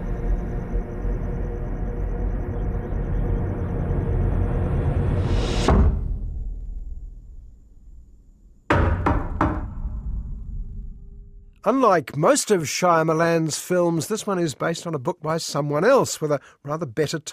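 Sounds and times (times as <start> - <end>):
low quiet drone: 0.0 - 11.6
sharp loud knocks on a door: 8.7 - 10.2
speech: 11.6 - 17.3.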